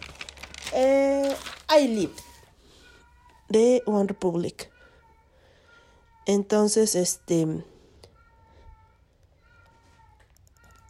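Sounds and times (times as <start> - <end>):
speech: 0.7 - 2.3, 3.5 - 4.7, 6.3 - 7.7
pet cat meowing: 9.4 - 10.8.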